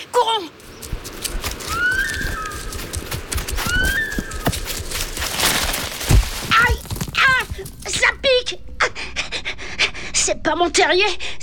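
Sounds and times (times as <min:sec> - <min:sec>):
wind: 0:00.0 - 0:11.4
rustling: 0:00.5 - 0:08.4
animal's shrill alarm whistle call: 0:01.6 - 0:02.8, 0:03.5 - 0:04.6
speech: 0:10.5 - 0:11.4.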